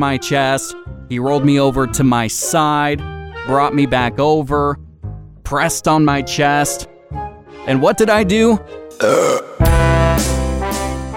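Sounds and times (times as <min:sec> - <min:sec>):
speech: 0:00.0 - 0:04.8, 0:05.5 - 0:06.9, 0:07.6 - 0:09.6
breathy intake: 0:08.7 - 0:09.7
loud drawn-out throaty burp: 0:09.0 - 0:10.0.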